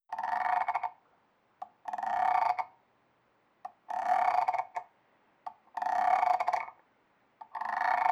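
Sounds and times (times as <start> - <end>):
frog croak: 0.1 - 1.0, 1.8 - 2.8, 3.8 - 4.9, 5.5 - 6.8, 7.4 - 8.1.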